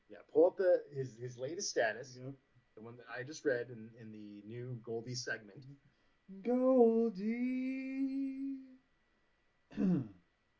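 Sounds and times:
speech: 0:00.4 - 0:08.7, 0:09.8 - 0:10.2
person clearing throat: 0:09.7 - 0:10.2.

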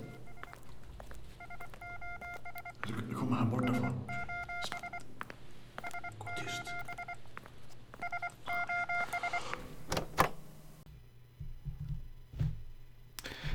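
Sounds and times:
short electronic beeping tones in bursts: 0:00.0 - 0:09.9
low hum: 0:00.0 - 0:13.0
speech: 0:02.9 - 0:04.8.

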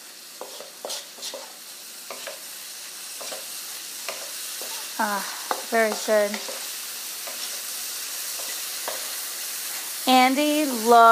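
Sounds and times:
red pepper sizzling in a pan of frying rice: 0:00.0 - 0:11.1
speech: 0:05.0 - 0:06.6, 0:10.1 - 0:11.1.

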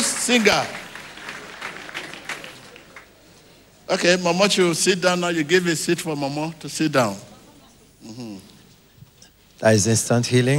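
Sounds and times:
congregation clapping at a church healing service: 0:00.0 - 0:03.7
speech: 0:00.3 - 0:00.8, 0:03.9 - 0:07.3, 0:08.0 - 0:08.5, 0:09.6 - 0:10.5.

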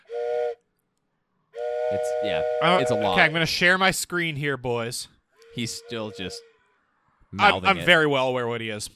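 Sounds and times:
whistle blasts: 0:00.0 - 0:00.6, 0:01.6 - 0:03.4, 0:05.4 - 0:07.0
speech: 0:01.9 - 0:06.5, 0:07.3 - 0:08.9.

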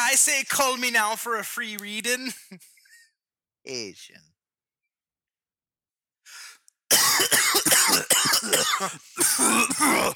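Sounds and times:
speech: 0:00.1 - 0:02.7, 0:03.6 - 0:04.3, 0:07.2 - 0:10.1
harsh hacking coughs: 0:06.9 - 0:10.1.

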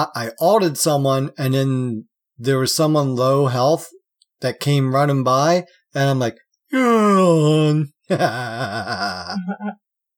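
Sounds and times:
speech: 0:00.0 - 0:09.8
person giving exaggerated fake yawn: 0:06.7 - 0:09.7.

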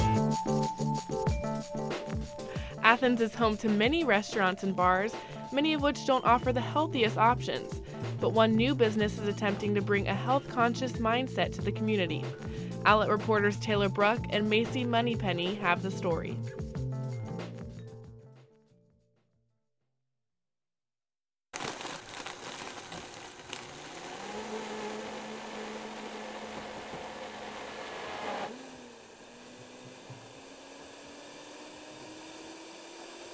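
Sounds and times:
music: 0:00.0 - 0:19.4
speech: 0:02.9 - 0:16.6
blender mixing a protein nutrition shake at a smoothie and juice bar: 0:21.6 - 0:33.3.

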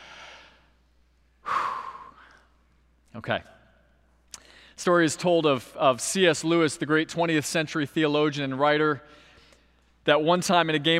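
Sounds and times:
person taking a deep breath: 0:00.0 - 0:00.8, 0:01.4 - 0:02.6, 0:04.3 - 0:04.8
speech: 0:03.1 - 0:03.6, 0:04.8 - 0:09.2, 0:10.0 - 0:10.9.

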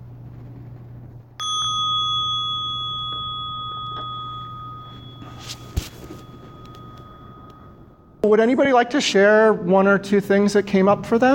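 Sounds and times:
faint low hum: 0:00.0 - 0:11.3
bell rung to end a meditation session: 0:01.4 - 0:08.4
speech: 0:08.2 - 0:11.3.

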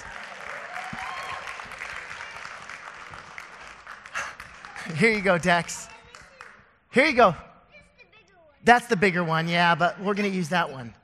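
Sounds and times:
scattered cheers and whistles: 0:00.0 - 0:02.3
audience clapping: 0:00.0 - 0:07.2
speech: 0:04.9 - 0:05.9, 0:06.9 - 0:07.5, 0:08.6 - 0:11.0.

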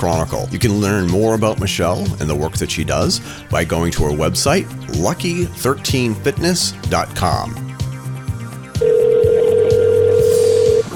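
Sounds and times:
speech: 0:00.0 - 0:07.7
malfunctioning phone electronic telephone tone: 0:08.8 - 0:10.9.

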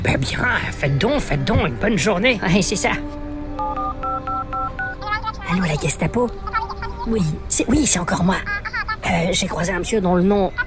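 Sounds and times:
speech: 0:00.0 - 0:10.6
touch-tone keys dialing a telephone number: 0:03.6 - 0:05.0.

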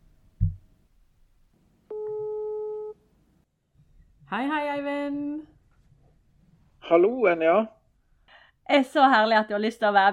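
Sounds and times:
soft thump: 0:00.4 - 0:00.7
telephone ringing tone on an outgoing call: 0:01.9 - 0:03.0
speech: 0:04.3 - 0:05.5, 0:06.9 - 0:07.8, 0:08.7 - 0:10.1.

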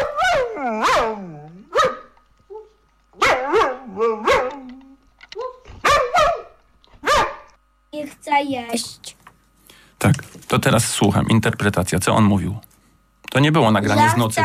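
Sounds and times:
dog barking and yowling: 0:00.0 - 0:07.5
speech: 0:08.0 - 0:09.2, 0:10.0 - 0:12.7, 0:13.3 - 0:14.4.

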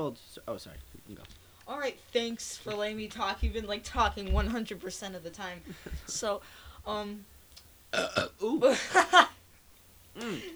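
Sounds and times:
people chatting loudly: 0:00.0 - 0:07.3
speech: 0:00.0 - 0:09.4, 0:10.2 - 0:10.5
people laughing: 0:03.1 - 0:06.4, 0:08.4 - 0:09.4
person burping after eating chocolate ice cream: 0:07.9 - 0:09.0, 0:10.2 - 0:10.5.

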